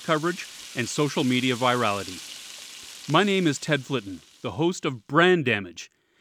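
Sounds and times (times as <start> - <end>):
speech: 0.0 - 2.3, 3.1 - 6.0
faint crackling hiss: 0.0 - 6.2.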